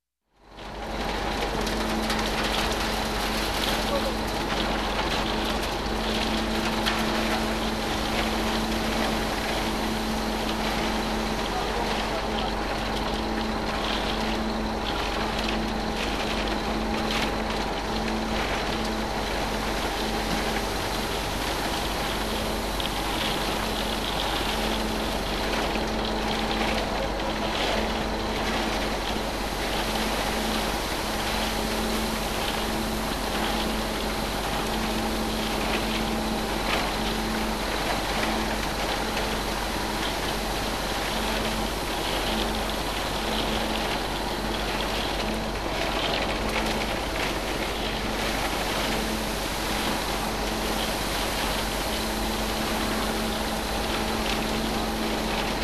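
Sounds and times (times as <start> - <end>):
concrete mixer: 0.5 - 55.6.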